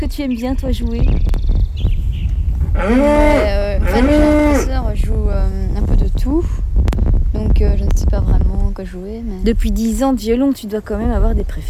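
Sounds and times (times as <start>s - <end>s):
speech: 0.0s - 1.9s, 2.8s - 6.6s, 7.6s - 11.6s
low rumbling noise: 0.0s - 11.6s
adult cow mooing: 2.7s - 4.8s.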